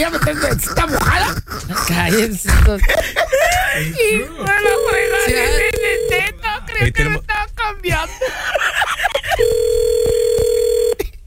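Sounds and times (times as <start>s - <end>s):
speech: 0.0s - 8.6s
laughter: 2.1s - 7.1s, 7.9s - 9.5s
telephone ringing with an electronic tone: 4.5s - 6.4s, 9.4s - 11.1s.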